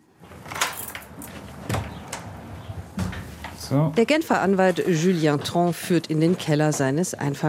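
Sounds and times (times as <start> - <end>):
heavy armored bunker door with levers opening: 0.2 - 3.7
speech: 3.7 - 7.4.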